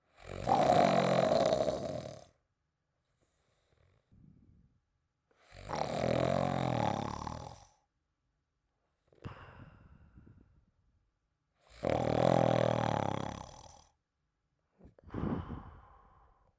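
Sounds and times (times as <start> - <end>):
snoring: 0.1 - 2.4, 3.3 - 4.2, 5.4 - 7.9, 11.6 - 14.0.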